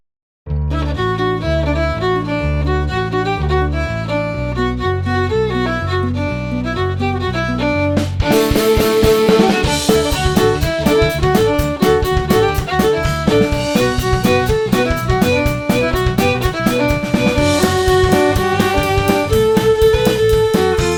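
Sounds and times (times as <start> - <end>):
guitar: 0.6 - 20.9
violins: 0.7 - 20.9
drums: 7.9 - 20.9.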